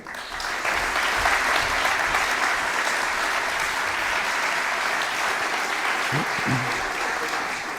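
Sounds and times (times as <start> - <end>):
audience applause as a speaker is introduced: 0.0 - 7.7
laughter: 5.5 - 7.7
low voice: 6.1 - 7.0.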